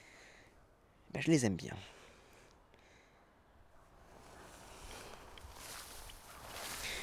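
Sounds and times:
speech: 1.1 - 2.0
constant rustling background: 4.1 - 7.0
footsteps crunching outdoors: 5.4 - 7.0.

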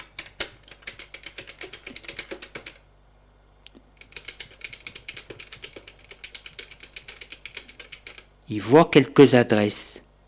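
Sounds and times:
typing on a computer keyboard: 0.0 - 2.8, 4.0 - 8.3
speech: 8.5 - 10.0.

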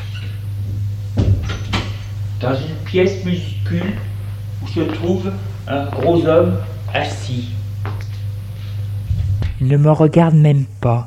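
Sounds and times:
door creaking open: 0.0 - 0.4
steady low hum: 0.0 - 11.0
speech: 2.4 - 8.0, 9.6 - 11.0.

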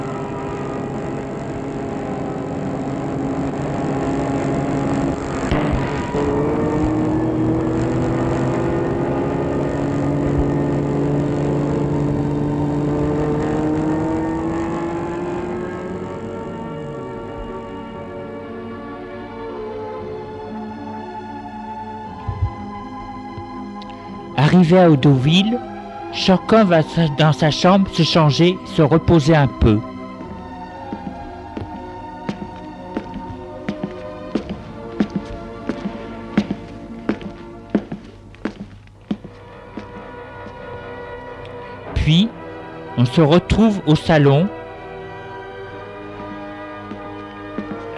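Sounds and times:
car engine humming while driving along a road: 0.0 - 18.3, 28.0 - 43.0, 44.3 - 47.9
speech: 24.6 - 29.9, 43.2 - 44.6.

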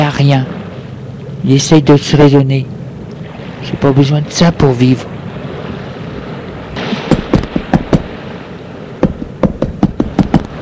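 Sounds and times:
speech: 0.2 - 0.6, 1.4 - 2.8, 3.6 - 5.1
knocking on a door: 7.1 - 8.1, 9.0 - 10.5.

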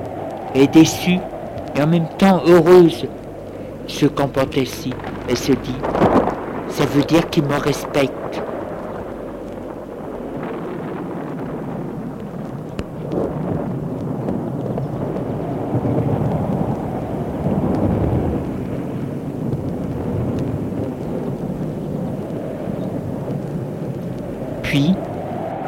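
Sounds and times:
deep rolling thunder: 0.0 - 25.6
rain: 0.0 - 25.6
wind: 0.0 - 25.6
speech: 0.5 - 3.2, 3.9 - 6.1, 6.7 - 8.5.

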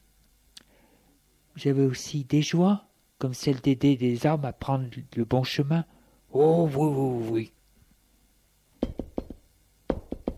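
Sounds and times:
speech: 1.6 - 7.6
knocking on a door: 8.8 - 10.3.

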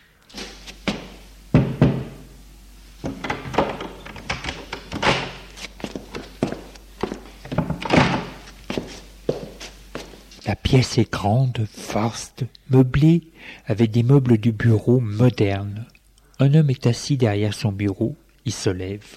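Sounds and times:
footfalls of someone entering: 0.3 - 2.2, 3.0 - 10.4
knocking on an office door: 0.9 - 2.2
speech: 10.5 - 19.1.

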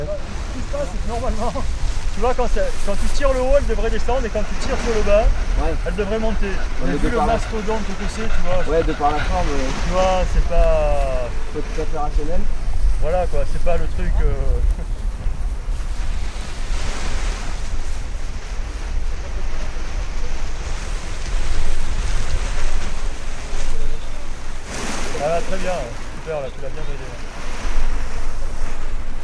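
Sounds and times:
wind buffeting the microphone outdoors: 0.0 - 29.2
speech: 0.8 - 15.0, 25.4 - 27.3.

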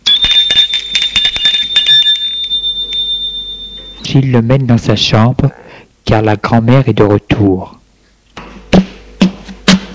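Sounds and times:
metallic doorbell ringing at a home: 0.0 - 4.1
speech: 4.1 - 7.8.

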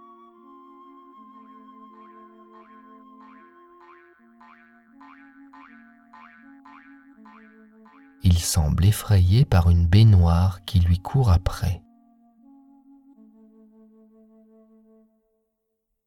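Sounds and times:
cartoon boings of a pink rabbit bounding around: 3.8 - 8.2
speech: 8.4 - 11.8.

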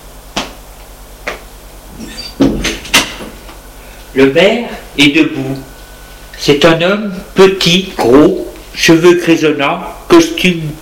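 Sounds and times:
door creaking as it swings open: 2.0 - 3.2
speech: 4.1 - 5.7, 6.4 - 10.7.

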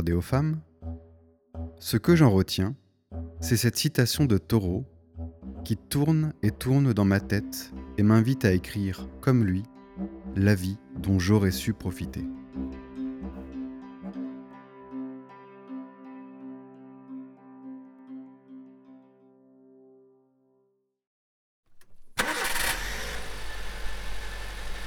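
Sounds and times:
speech: 0.0 - 0.7, 1.8 - 2.8, 3.4 - 4.9, 5.6 - 12.4
car engine rumbling: 21.8 - 24.8.

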